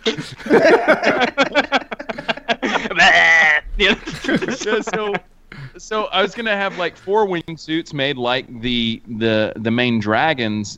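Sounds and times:
laughter: 0.0 - 5.2, 6.2 - 7.2
speech: 0.1 - 1.5, 3.8 - 10.7
sheep bleating: 3.0 - 3.7.

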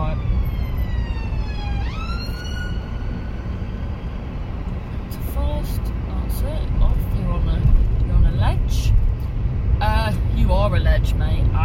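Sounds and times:
ambulance siren wailing: 0.0 - 4.6
steady road rumble: 0.0 - 11.6.

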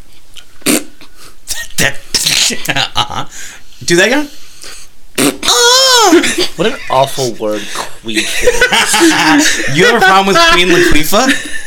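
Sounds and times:
fart noises made with the mouth: 0.6 - 1.1, 5.1 - 5.6
speech: 1.8 - 4.4, 6.1 - 11.6
laughter: 6.0 - 11.6.

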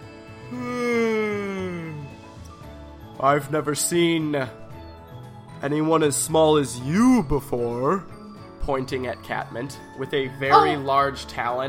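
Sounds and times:
voice imitating the yawn of an adult bronze dragon: 0.4 - 2.2
speech: 3.2 - 4.6, 5.6 - 11.6.

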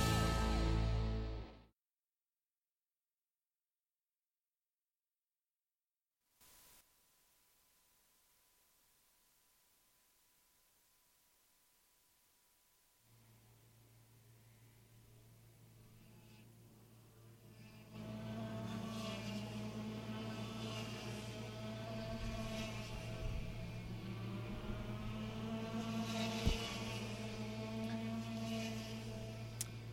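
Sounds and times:
racing kart engines firing up and revving: 0.0 - 1.4, 15.4 - 29.9.

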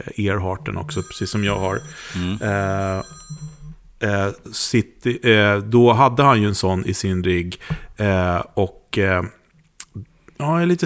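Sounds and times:
speech: 0.0 - 3.4, 4.0 - 9.4, 10.0 - 10.8
quiet hum: 0.0 - 10.6
phone ringing with electronic tones: 0.1 - 8.1.

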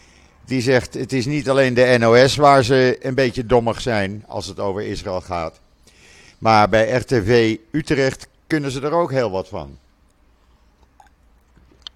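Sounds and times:
speech: 0.5 - 5.6, 6.4 - 9.8
person sipping water: 10.1 - 11.9
wet mouth sounds: 10.1 - 11.9.

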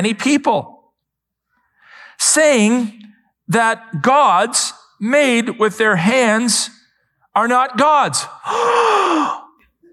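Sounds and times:
speech: 0.0 - 0.7, 2.2 - 6.8, 7.4 - 9.4
breathy gasp: 8.4 - 9.6.

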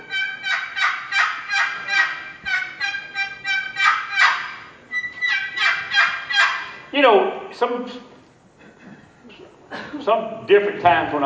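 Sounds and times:
aluminum turkey call with aluminum lid yelping: 0.0 - 6.9
speech: 7.0 - 8.1, 10.0 - 11.2.

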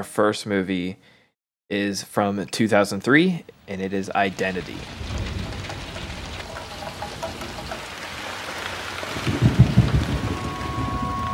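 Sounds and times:
speech: 0.0 - 5.1
deep rolling thunder rumble: 4.1 - 11.3
heavy rain: 4.2 - 11.3.

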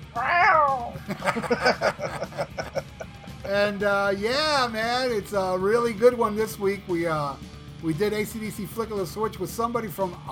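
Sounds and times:
cat meowing: 0.0 - 1.0
laughter: 1.0 - 3.6
speech: 1.1 - 2.0, 3.6 - 10.3.

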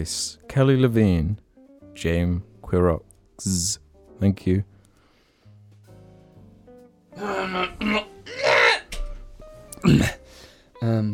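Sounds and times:
speech: 0.0 - 1.4, 2.0 - 4.7, 7.2 - 8.0, 10.8 - 11.1
short groaning hummed vocal sounds: 7.2 - 8.8
person clearing throat: 7.2 - 9.0, 9.8 - 10.2.

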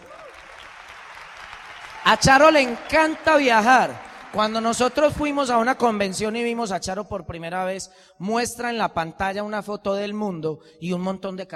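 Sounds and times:
audience applauding: 0.0 - 6.6
speech: 2.1 - 11.5.

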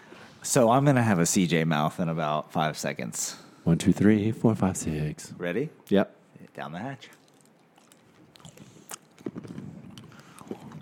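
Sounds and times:
speech: 0.4 - 7.2
wet chewing of a sour hard candy: 7.0 - 10.8
sharp mouth clicks: 7.1 - 10.8.

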